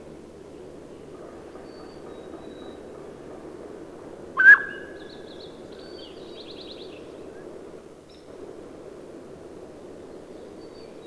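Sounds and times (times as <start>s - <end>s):
low background hiss: 0.0s - 11.0s
mountain quail whistled call: 4.4s - 5.1s.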